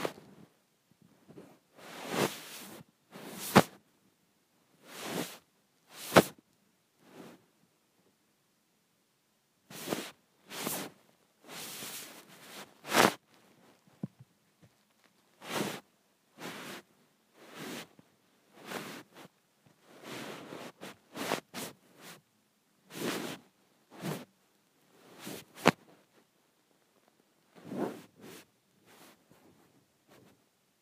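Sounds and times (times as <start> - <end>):
phone sliding across bedsheets: 1.8 - 3.8, 4.9 - 6.3, 9.7 - 13.2, 15.4 - 15.8, 16.4 - 17.9, 18.6 - 19.3, 19.9 - 22.2, 22.9 - 24.3, 25.1 - 25.8, 27.6 - 29.2.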